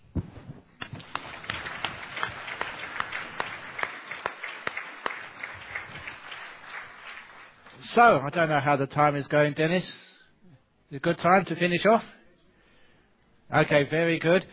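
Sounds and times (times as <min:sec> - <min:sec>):
room full of people applauding: 0:00.8 - 0:07.8
speech: 0:07.9 - 0:10.1, 0:10.9 - 0:12.2, 0:13.5 - 0:14.5.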